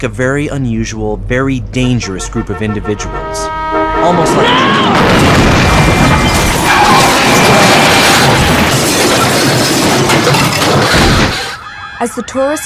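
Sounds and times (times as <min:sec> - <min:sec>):
speech: 0:00.0 - 0:07.6, 0:12.0 - 0:12.6
SUV smashing into the driver's side of a car: 0:04.2 - 0:11.9
crunching grinding and rumbling debris from a car crash: 0:04.9 - 0:11.6.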